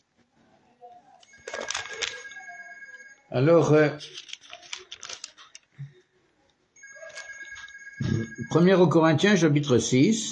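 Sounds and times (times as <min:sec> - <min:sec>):
telephone bell ringing during a sermon: 0:01.2 - 0:04.0, 0:06.8 - 0:09.5
speech: 0:03.3 - 0:04.3, 0:08.5 - 0:10.2.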